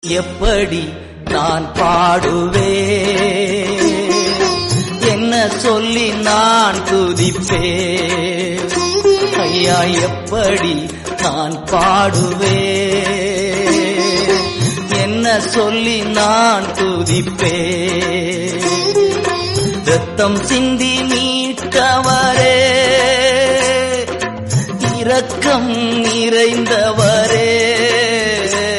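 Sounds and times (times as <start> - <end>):
Tamil Christian song: 0.0 - 19.2, 19.8 - 28.7.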